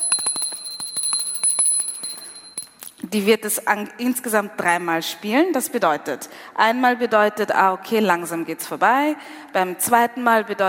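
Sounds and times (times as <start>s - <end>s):
hand bell shaken quickly: 0.0s - 2.8s
speech: 3.1s - 10.6s.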